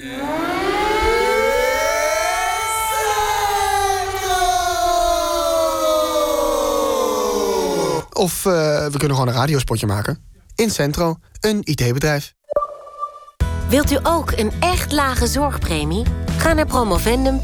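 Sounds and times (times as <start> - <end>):
air raid siren wailing: 0.0 - 8.0
speech: 8.2 - 12.4, 13.7 - 17.4.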